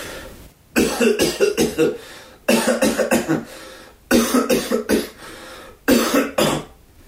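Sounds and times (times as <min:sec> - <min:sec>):
dry irritating coughing into a smartphone cough-tester app: 0:00.8 - 0:05.2, 0:05.9 - 0:06.7.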